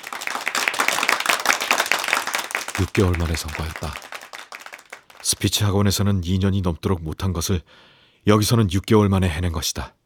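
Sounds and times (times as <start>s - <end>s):
group of people applauding: 0.0s - 5.7s
speech: 2.8s - 4.1s, 5.2s - 10.0s.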